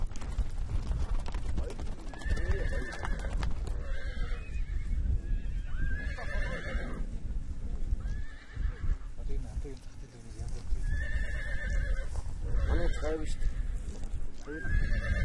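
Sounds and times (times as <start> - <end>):
clattering horse hooves: 0.0 - 4.5, 9.3 - 15.2
strong horse about 3 years old whinnying while being caught with a looped pole: 2.1 - 7.1, 8.0 - 9.1, 10.8 - 13.8, 14.4 - 15.2.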